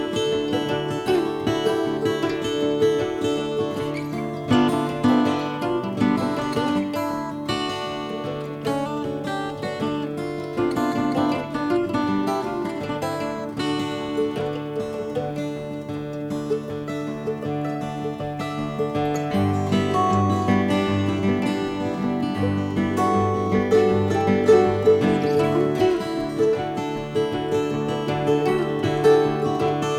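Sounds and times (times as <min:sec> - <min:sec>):
guitar: 0:00.0 - 0:29.9
mandolin: 0:00.0 - 0:29.9.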